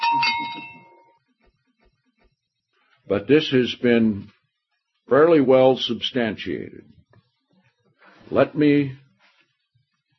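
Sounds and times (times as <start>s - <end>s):
small hand bell ringing: 0.0s - 1.2s
speech: 3.1s - 4.4s, 5.1s - 7.0s, 8.3s - 9.0s.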